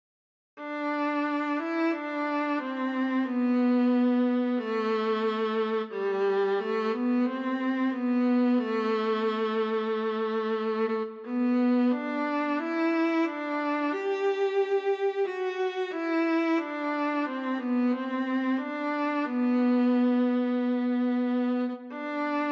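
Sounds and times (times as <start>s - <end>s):
solo viola: 0.6s - 22.4s.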